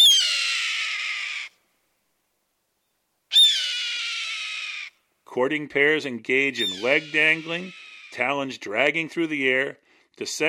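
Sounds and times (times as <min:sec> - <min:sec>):
red-tailed hawk screaming: 0:00.0 - 0:01.5, 0:03.3 - 0:05.0, 0:06.6 - 0:08.2
speech: 0:05.3 - 0:10.4.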